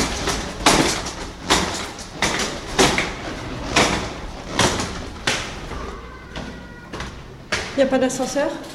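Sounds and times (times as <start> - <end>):
large shopping trolley wheels knocking against each step of a staircase: 0.0 - 8.7
speech: 7.8 - 8.7.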